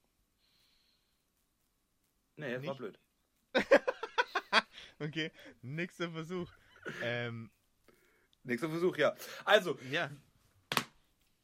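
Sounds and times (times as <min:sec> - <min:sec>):
speech: 0:02.4 - 0:03.9, 0:05.0 - 0:07.6, 0:08.4 - 0:10.3
laughter: 0:03.6 - 0:05.2, 0:06.4 - 0:07.3
hand slapping chest: 0:10.6 - 0:11.0.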